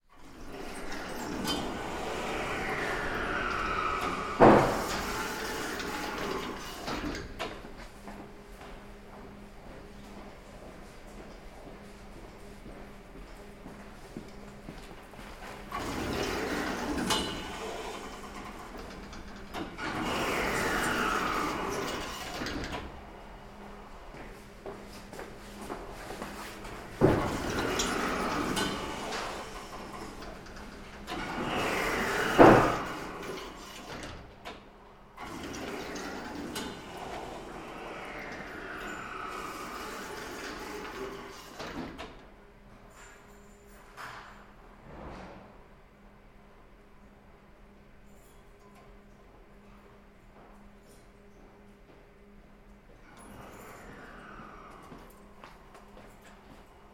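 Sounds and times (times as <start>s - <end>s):
electric door: 0.1s - 7.6s, 15.6s - 24.1s, 26.2s - 42.3s, 53.1s - 55.2s.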